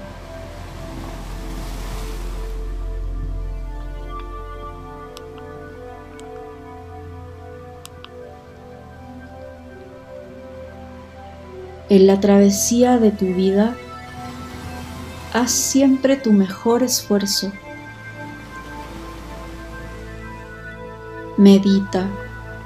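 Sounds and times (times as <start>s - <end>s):
ocean wave washing on shore: 0.0s - 4.6s, 13.7s - 16.5s, 17.4s - 20.7s
speech: 11.9s - 13.8s, 15.4s - 17.6s, 21.4s - 22.2s.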